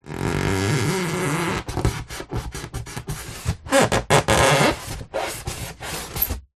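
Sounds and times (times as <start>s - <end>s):
polystyrene creaking foley: 0.0s - 1.8s, 3.4s - 6.5s.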